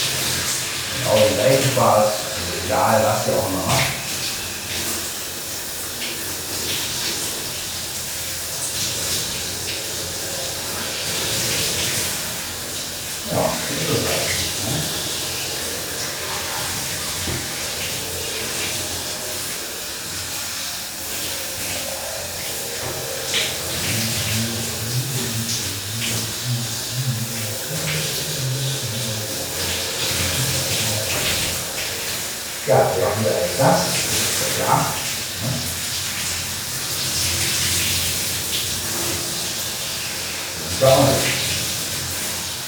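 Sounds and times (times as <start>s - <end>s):
water spraying from a running shower: 0.0s - 42.6s
speech: 1.1s - 4.0s.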